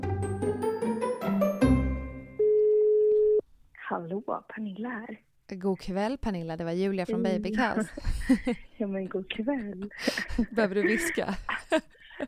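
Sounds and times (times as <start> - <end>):
melodic chime-like music: 0.1 - 2.4
telephone ringing tone: 2.3 - 3.4
speech: 4.0 - 11.9
laughter: 7.7 - 8.7, 9.8 - 12.2.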